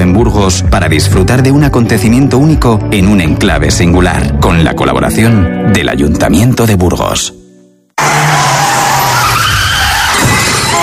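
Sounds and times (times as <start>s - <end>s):
speech: 0.2s - 7.4s
car crash: 8.0s - 10.8s.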